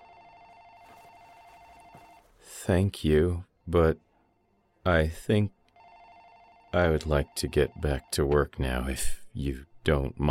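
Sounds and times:
desk telephone ringing with buzzy electronic tone: 0:00.0 - 0:02.2, 0:05.8 - 0:06.8
speech: 0:02.6 - 0:04.1, 0:04.8 - 0:05.6, 0:06.8 - 0:10.2.

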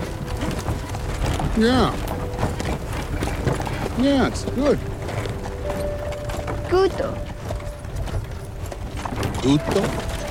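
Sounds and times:
horse hooves clip-clopping on a film set: 0:00.0 - 0:10.2
horse-drawn wagon wheels rumbling on a film set: 0:00.0 - 0:10.2
speech: 0:01.6 - 0:02.1, 0:04.0 - 0:04.9, 0:06.7 - 0:07.3, 0:09.4 - 0:10.1.

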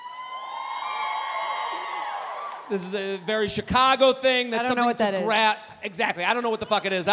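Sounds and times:
crowd of young women in their 20s screaming: 0:00.0 - 0:02.7
speech: 0:02.7 - 0:07.1.

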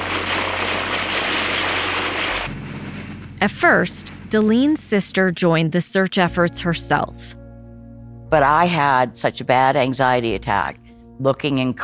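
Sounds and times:
propeller plane droning overhead: 0:00.0 - 0:11.2
speech: 0:03.4 - 0:07.4, 0:08.3 - 0:11.8.

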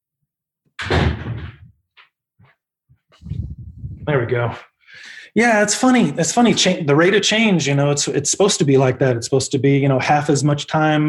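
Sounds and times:
heavy door swinging shut: 0:00.8 - 0:01.7
speech: 0:04.1 - 0:11.0.

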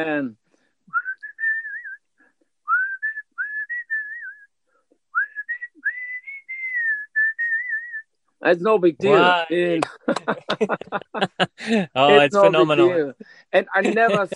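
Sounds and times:
speech: 0:00.0 - 0:00.4, 0:08.4 - 0:14.3
person whistling a lively melody: 0:00.9 - 0:02.0, 0:02.7 - 0:04.5, 0:05.1 - 0:08.1
laughter: 0:09.1 - 0:13.0, 0:13.6 - 0:14.3.

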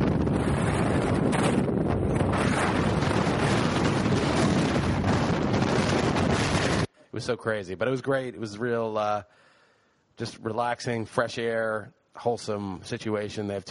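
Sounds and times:
strong freezing gusting wind on a hillside: 0:00.0 - 0:06.9
speech: 0:07.2 - 0:09.5, 0:10.2 - 0:13.6.

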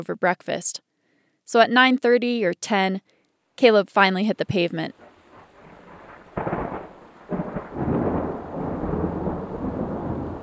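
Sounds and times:
speech: 0:00.0 - 0:00.9, 0:01.5 - 0:05.0
heavy rain: 0:05.0 - 0:10.4
thunder booming: 0:05.0 - 0:10.4.

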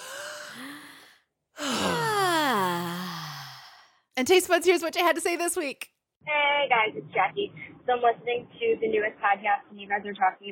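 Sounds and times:
deep ASMR breathing with breathy voiced sighs: 0:00.0 - 0:04.0
speech: 0:04.2 - 0:10.5.

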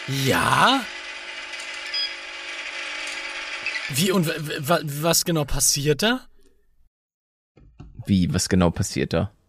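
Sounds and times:
washing machine whirring during wash cycle: 0:00.0 - 0:04.4
speech: 0:00.1 - 0:01.0, 0:03.9 - 0:06.3, 0:08.1 - 0:09.4.

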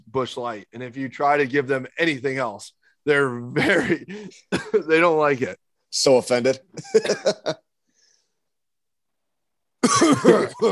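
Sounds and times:
speech: 0:00.1 - 0:07.7, 0:09.9 - 0:10.7
person coughing: 0:09.8 - 0:10.7.

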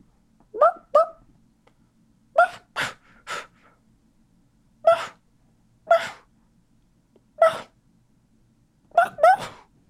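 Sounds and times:
person imitating a dog barking in its sleep: 0:00.6 - 0:01.2, 0:02.4 - 0:03.0, 0:04.9 - 0:05.2, 0:05.9 - 0:06.2, 0:07.4 - 0:07.8, 0:08.9 - 0:09.7.

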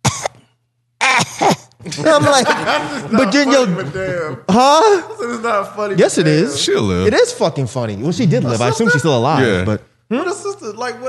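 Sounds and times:
person imitating a woman's strained painful cough: 0:00.0 - 0:00.4, 0:01.0 - 0:02.0
speech: 0:01.4 - 0:11.0
laughter: 0:01.8 - 0:06.4.

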